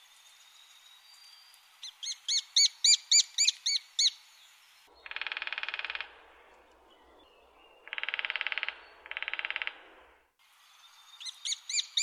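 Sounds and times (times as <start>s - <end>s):
lesser spotted woodpecker giving high kee notes: 1.8s - 4.2s, 4.9s - 10.2s, 11.2s - 12.0s
lesser spotted woodpecker dry drumming rolls: 4.9s - 10.3s.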